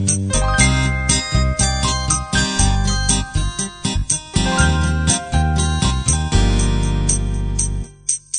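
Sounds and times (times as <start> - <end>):
music intro: 0.2 - 8.1.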